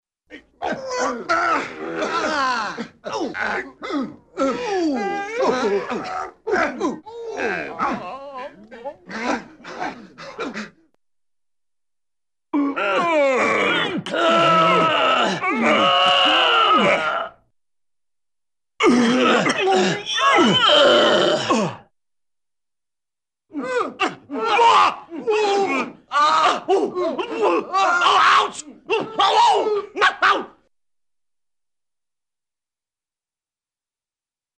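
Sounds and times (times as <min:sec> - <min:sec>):
small group of men with various cartoon grunts: 0:00.3 - 0:10.9, 0:12.6 - 0:17.4, 0:18.8 - 0:21.9, 0:23.5 - 0:30.6.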